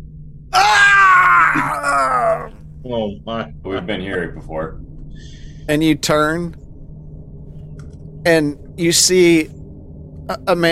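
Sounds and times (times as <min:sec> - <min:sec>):
person screaming in an alleyway at night: 0:00.6 - 0:02.6
speech: 0:02.8 - 0:06.6, 0:08.2 - 0:09.6, 0:10.3 - 0:10.7.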